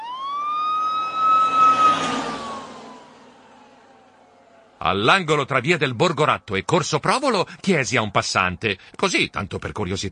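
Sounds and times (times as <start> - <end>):
fire truck siren passing: 0.0 - 8.4
rumbling fire truck engine: 0.7 - 7.7
speech: 4.8 - 10.1.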